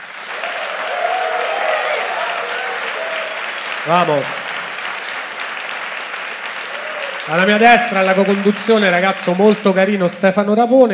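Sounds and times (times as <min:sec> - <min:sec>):
faint murmur of cheering: 0:00.0 - 0:04.3, 0:06.6 - 0:08.9
live audience in Milan clapping: 0:00.0 - 0:10.4
speech: 0:03.9 - 0:04.4, 0:07.3 - 0:10.9.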